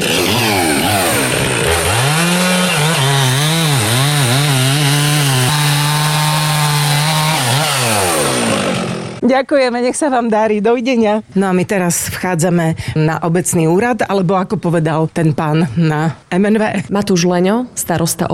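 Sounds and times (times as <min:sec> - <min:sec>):
chainsaw revving: 0:00.0 - 0:09.2
speech: 0:09.4 - 0:18.3.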